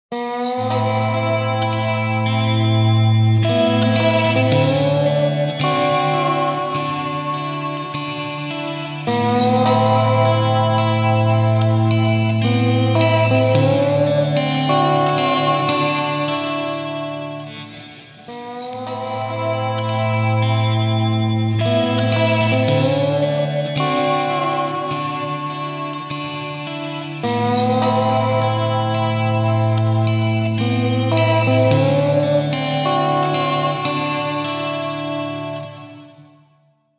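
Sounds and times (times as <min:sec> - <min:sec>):
guitar slide: 0:00.1 - 0:36.3.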